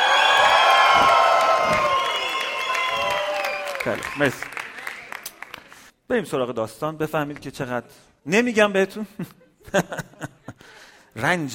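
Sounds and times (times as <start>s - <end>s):
large audience screaming and cheering: 0.0s - 5.3s
speech: 3.8s - 4.6s, 6.1s - 11.5s.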